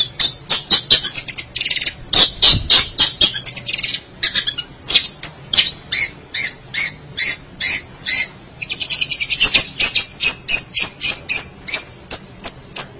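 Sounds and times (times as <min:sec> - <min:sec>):
Long-tailed Shrike song of harsh chattering notes: 0:00.0 - 0:12.9.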